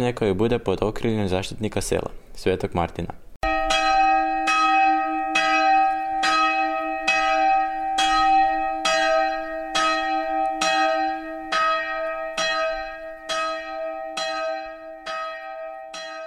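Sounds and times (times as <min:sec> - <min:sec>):
speech: 0:00.0 - 0:03.2
small and large village chapel bells in Martinšćina rung by ropes: 0:03.4 - 0:16.2.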